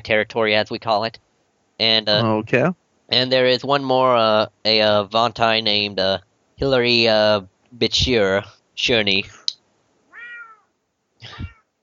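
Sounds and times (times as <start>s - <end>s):
speech: 0.0s - 1.2s, 1.8s - 9.4s
cat meowing: 10.1s - 10.7s, 11.3s - 11.6s.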